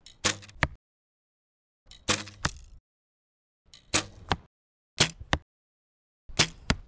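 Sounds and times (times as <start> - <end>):
arrows: 2.0 - 2.7, 3.9 - 5.4, 6.4 - 6.8.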